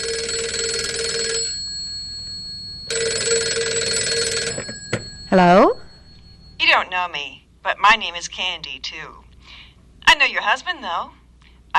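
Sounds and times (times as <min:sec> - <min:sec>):
telephone ringing with buzzy bell tone: 0:00.0 - 0:06.9
speech: 0:05.3 - 0:05.8, 0:07.0 - 0:09.3, 0:10.2 - 0:11.2.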